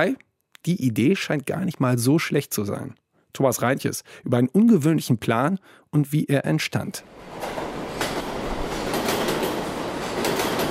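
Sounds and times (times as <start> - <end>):
speech: 0.0 - 7.6
New York subway train rumbling along, wheels on track: 7.0 - 10.6.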